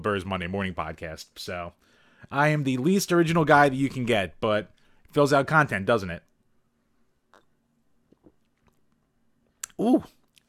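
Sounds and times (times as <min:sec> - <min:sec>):
speech: 0:00.0 - 0:06.3, 0:09.8 - 0:10.4
person sipping beer and swallowing: 0:07.2 - 0:10.4.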